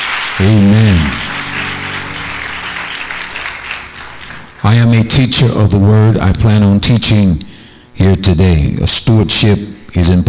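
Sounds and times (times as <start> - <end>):
large church audience applauding: 0.0 - 5.2
faint tonal hum: 0.0 - 10.2
speech: 0.4 - 1.4, 4.6 - 10.2.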